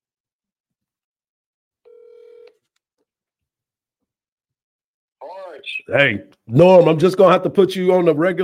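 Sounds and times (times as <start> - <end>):
FaceTime call ringing tone beep: 1.9 - 2.6
speech: 5.2 - 8.4.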